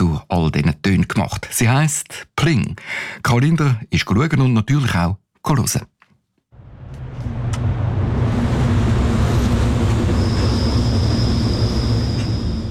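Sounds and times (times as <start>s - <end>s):
speech: 0.2s - 6.0s
train passing outside the entrance of a design museum: 6.6s - 12.6s
thin high train wheel squeal: 8.2s - 12.6s.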